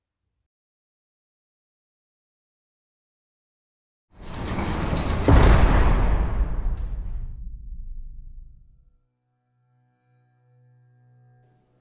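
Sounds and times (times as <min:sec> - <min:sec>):
deep rumbling echo of gunshot: 0:04.2 - 0:08.9
gunshot: 0:04.9 - 0:08.8.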